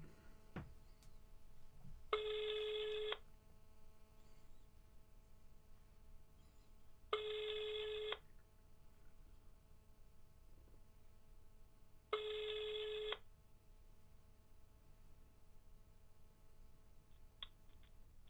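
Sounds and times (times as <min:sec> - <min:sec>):
electronic phone call ringback tones: 0:02.2 - 0:03.2, 0:07.2 - 0:08.2, 0:12.2 - 0:13.2.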